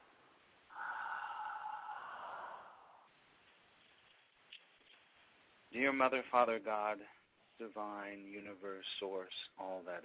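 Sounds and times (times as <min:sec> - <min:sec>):
big deep breath taken before a prayer: 0:00.7 - 0:03.1
speech: 0:05.7 - 0:10.0.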